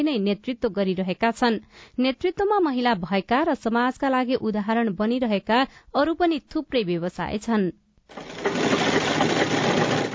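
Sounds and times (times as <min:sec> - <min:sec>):
speech: 0:00.0 - 0:08.3
sewing machine stitching cloth with needle and thread for tailoring work: 0:08.1 - 0:10.1.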